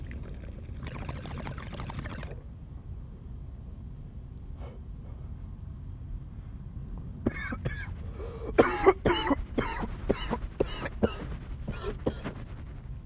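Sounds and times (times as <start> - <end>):
low rumble: 0.0 - 13.0
harsh hacking coughs: 7.3 - 7.9, 8.6 - 12.2.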